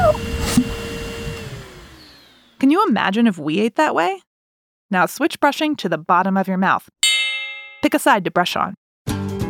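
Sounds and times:
vacuum cleaner running with faint motor whine: 0.0s - 2.9s
speech: 2.8s - 4.3s, 4.9s - 7.0s, 7.8s - 8.8s.

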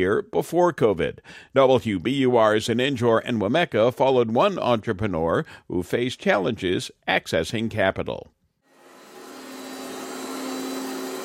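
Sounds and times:
speech: 0.0s - 8.4s
vacuum cleaner running in an office: 8.7s - 11.2s.

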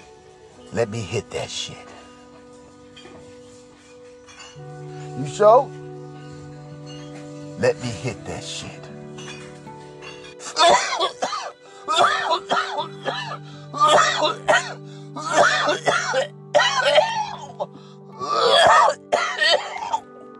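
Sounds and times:
speech: 0.7s - 2.0s, 4.6s - 5.8s, 7.6s - 9.0s
harsh coughing fit after smoking weed: 10.4s - 20.1s.

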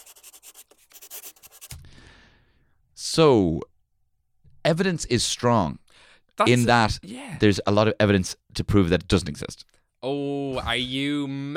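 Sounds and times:
pen or pencil writing on paper: 0.0s - 1.8s
speech: 3.2s - 3.7s, 4.7s - 5.8s, 6.4s - 11.5s.

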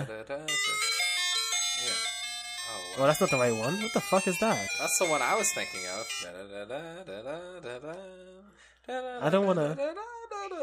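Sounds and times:
electronic ice cream truck jingle: 0.5s - 6.3s
speech: 3.0s - 10.6s.

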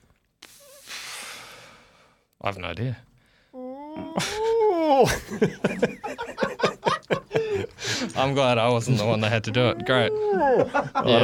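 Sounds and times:
long breathy exhale: 0.5s - 2.2s
speech: 2.4s - 3.1s, 4.0s - 6.4s, 8.1s - 11.2s
voice imitating a giraffe hum: 3.6s - 5.0s
laughter: 4.2s - 8.2s, 9.8s - 11.2s.

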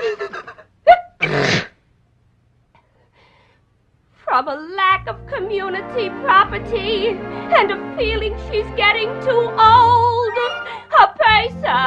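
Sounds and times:
loud sneeze: 0.9s - 1.8s
speech: 4.4s - 10.4s, 11.0s - 11.8s.

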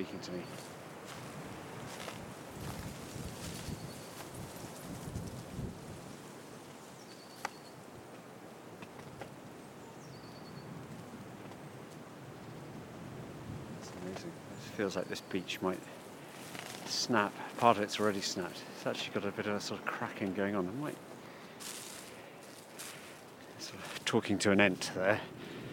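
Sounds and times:
speech: 0.0s - 0.8s, 14.8s - 16.0s, 17.0s - 21.1s, 24.1s - 25.4s
wind stirring dry leaves on a woodland descent from a ridge: 0.0s - 25.7s
footsteps crunching through dry leaves on a woodland descent: 0.5s - 7.6s, 15.8s - 18.6s, 20.8s - 24.9s.

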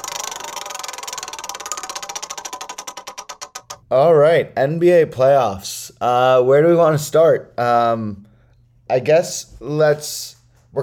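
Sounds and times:
spinning prize wheel ticking: 0.0s - 3.8s
speech: 3.9s - 8.2s, 8.9s - 10.8s.

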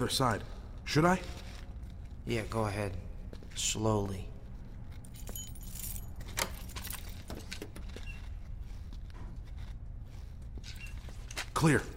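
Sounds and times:
speech: 0.0s - 1.4s, 2.3s - 4.3s, 11.6s - 11.9s
keys jangling as taken from a security door: 4.8s - 8.1s.

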